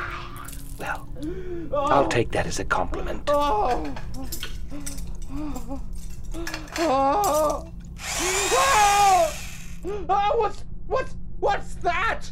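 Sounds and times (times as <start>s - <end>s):
speech: 0.9s - 12.3s
bone saw whirring: 8.0s - 9.8s
harsh grinding noise of bone saw: 8.0s - 9.8s.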